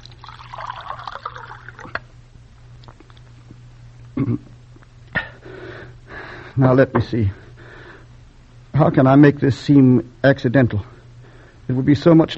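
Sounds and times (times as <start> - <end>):
water trickling and pouring: 0.0 - 2.0
speech: 4.2 - 4.5, 6.6 - 7.4, 8.8 - 10.9, 11.7 - 12.3.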